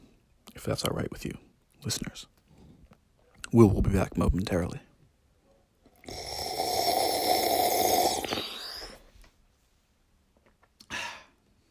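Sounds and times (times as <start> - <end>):
speech: 0.6 - 2.4, 3.5 - 4.9
gurgling slurp of yerba mate through a straw: 6.0 - 9.1.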